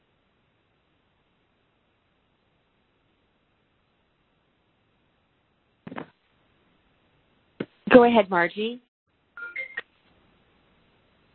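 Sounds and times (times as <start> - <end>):
speech: 7.9 - 8.9
telephone electronic ring: 9.4 - 9.8.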